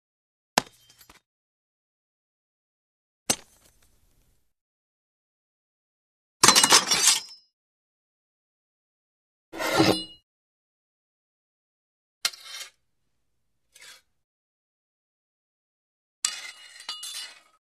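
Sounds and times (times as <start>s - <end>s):
sword picked up from ground: 0.6s - 1.2s, 6.4s - 7.4s, 9.6s - 10.2s.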